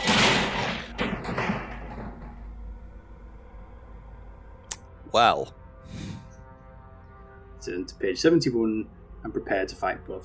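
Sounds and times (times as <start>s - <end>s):
heavy metal cell door torn from its hinges crashing onto hard rock floor: 0.0s - 2.4s
speech: 5.1s - 5.6s, 7.6s - 10.2s.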